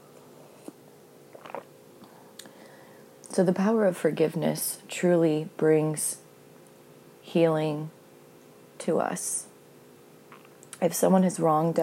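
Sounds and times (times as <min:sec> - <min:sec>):
low hum: 0:00.0 - 0:11.8
soft slurping mouth sounds: 0:00.5 - 0:02.2, 0:10.3 - 0:10.6
sipping a drink at breakfast: 0:00.6 - 0:01.7
swallowing: 0:00.6 - 0:01.7
speech: 0:03.4 - 0:06.2, 0:07.3 - 0:08.0, 0:08.8 - 0:09.5, 0:10.8 - 0:11.8.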